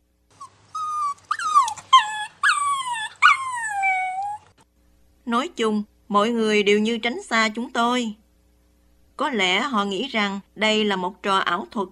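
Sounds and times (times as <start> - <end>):
dog whimpering and whining: 0.3 - 4.6
speech: 5.3 - 8.2, 9.2 - 11.9.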